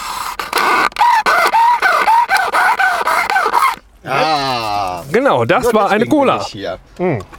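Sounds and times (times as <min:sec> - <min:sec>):
plastic straw squeaking through plastic cup lid: 0:00.0 - 0:03.8
speech: 0:05.2 - 0:07.3.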